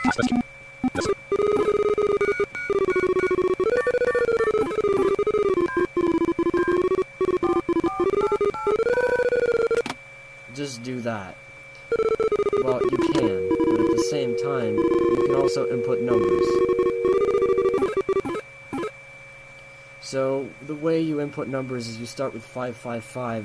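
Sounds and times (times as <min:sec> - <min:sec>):
speech: 0:00.1 - 0:01.2, 0:20.1 - 0:23.4
telephone ringing with electronic warbling tones: 0:01.0 - 0:09.8, 0:11.9 - 0:18.9.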